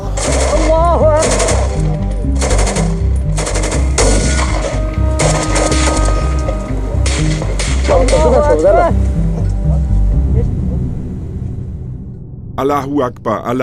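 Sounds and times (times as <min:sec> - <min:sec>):
dense rumbling backdrop: 0:00.0 - 0:13.6
automatic gunfire in a firefight: 0:00.2 - 0:01.8, 0:02.4 - 0:04.2
speech: 0:12.6 - 0:13.6.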